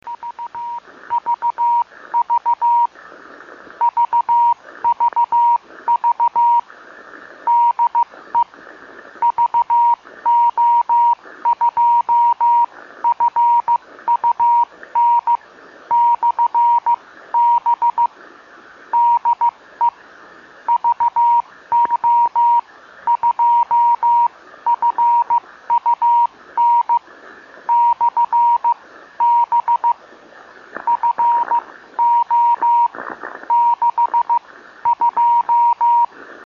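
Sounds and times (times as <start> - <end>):
50.003 MHz ham radio beacon signal: 0.0 - 2.9, 3.8 - 6.6, 9.2 - 18.1, 19.0 - 20.0, 20.7 - 27.0, 27.7 - 30.0, 30.8 - 36.1.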